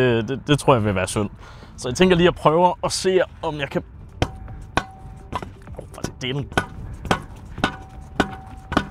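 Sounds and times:
speech: 0.0 - 4.0, 6.2 - 6.8
hammer pounding something into the ground: 4.2 - 8.9.

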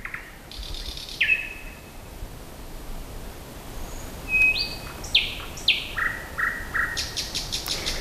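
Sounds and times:
nightingale singing at night: 0.0 - 2.1, 3.8 - 7.9.

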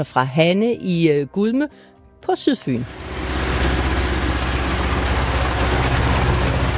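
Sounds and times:
speech: 0.0 - 3.1
large tractor engine rumbling in summer on southern Funen, Denmark: 2.8 - 6.7.

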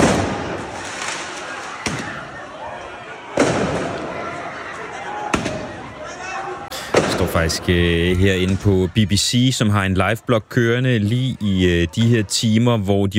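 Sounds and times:
fireworks going off in an open street: 0.0 - 2.4, 3.3 - 4.4, 5.3 - 5.8, 6.8 - 8.6
constant roar of crowd noise: 0.0 - 13.1
speech: 7.3 - 13.1.

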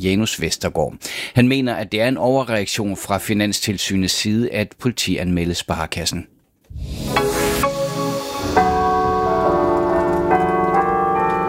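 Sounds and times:
speech: 0.0 - 7.3
cathedral carillon bells ringing a melody: 8.1 - 11.4.

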